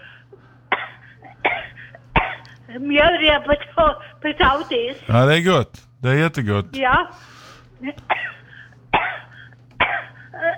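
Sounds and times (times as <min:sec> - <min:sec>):
person coughing: 0:00.7 - 0:02.5, 0:09.0 - 0:10.5
speech: 0:02.7 - 0:08.3.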